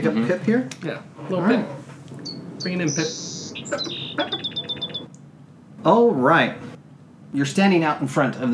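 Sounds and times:
speech: 0.0s - 1.9s, 2.6s - 4.6s, 5.8s - 6.7s, 7.3s - 8.5s
sparrow chirping: 1.2s - 5.2s.

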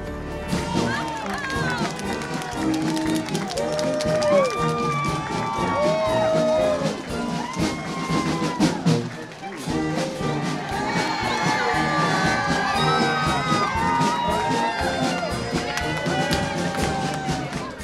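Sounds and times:
large crowd cheering and shouting welcome home: 0.0s - 17.8s
scattered clapping: 0.0s - 17.8s
excited whoops and yells: 0.5s - 8.9s, 10.5s - 17.8s.

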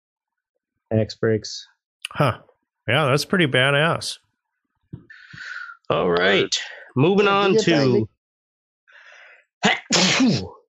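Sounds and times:
speech: 0.9s - 4.2s, 4.9s - 8.1s, 9.6s - 10.6s
person sneezing: 9.6s - 10.6s.

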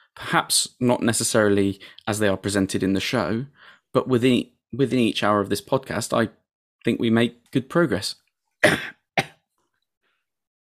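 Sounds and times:
speech: 0.2s - 8.9s
harsh throaty coughs: 8.6s - 9.4s.

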